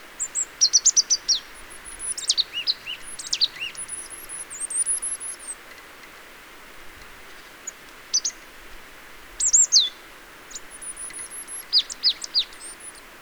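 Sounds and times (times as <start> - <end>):
Marsh tit Poecile palustris chipping calls: 0.2 - 5.7, 7.5 - 8.5, 9.4 - 13.0.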